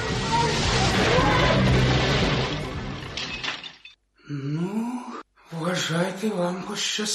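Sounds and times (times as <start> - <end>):
out of control car crashing and rolling over after its tyres are shot at: 0.1 - 4.0
clattering impacts of a car settling: 0.6 - 4.0
speech: 4.3 - 4.5, 5.7 - 7.1.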